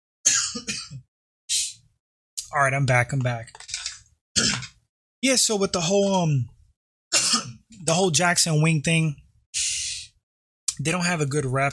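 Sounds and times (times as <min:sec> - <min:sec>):
person coughing harshly: 0:00.3 - 0:01.1, 0:04.4 - 0:04.8, 0:07.1 - 0:07.7
speech: 0:02.5 - 0:03.6, 0:05.2 - 0:06.6, 0:07.3 - 0:09.7, 0:10.8 - 0:11.7.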